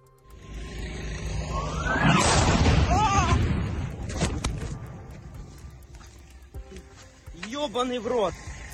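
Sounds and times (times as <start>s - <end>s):
sharp explosions from Grad rockets and mortars at Bakhmut in eastern Ukraine: 1.0s - 5.1s
heavy rumbling blast from shelling: 1.1s - 5.5s
speech: 7.7s - 8.5s.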